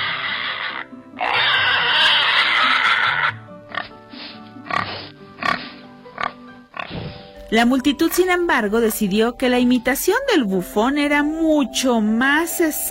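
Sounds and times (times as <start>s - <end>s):
pig squealing: 0.0s - 7.0s
speech: 7.5s - 12.8s.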